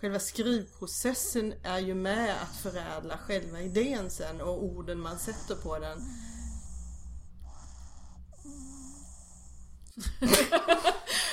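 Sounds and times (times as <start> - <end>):
speech: 0.0 - 6.3, 10.0 - 11.3
low hum: 0.0 - 11.0
dog lying down snoring with wheezy breaths: 1.7 - 10.0
human laughter at a dog: 10.0 - 11.3.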